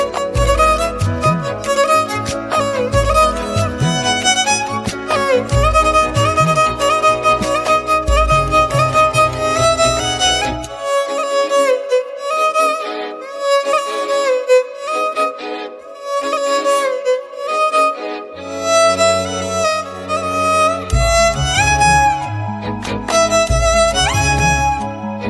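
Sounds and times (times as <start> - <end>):
violin ringtone: 0.0 - 25.2.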